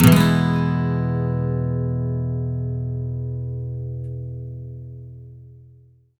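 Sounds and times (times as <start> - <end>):
acoustic guitar major sweep loops in E: 0.0 - 4.9.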